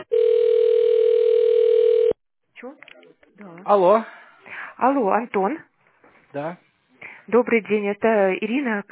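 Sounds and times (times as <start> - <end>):
telephone line tones while a call is being transferred: 0.1 - 2.1
speech: 3.7 - 4.1, 4.8 - 5.7, 6.3 - 6.6, 7.3 - 8.8.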